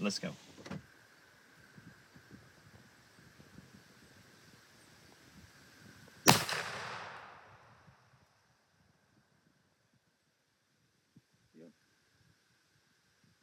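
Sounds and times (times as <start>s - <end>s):
speech: 0.0s - 0.5s
outdoor wind: 0.0s - 13.4s
rifle shot: 6.3s - 7.8s.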